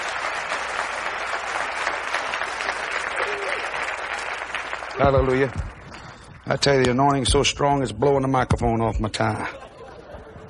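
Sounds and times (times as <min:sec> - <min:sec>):
church audience applauding: 0:00.0 - 0:06.8
speech: 0:05.0 - 0:05.7, 0:06.5 - 0:09.6
laughter: 0:09.2 - 0:10.4.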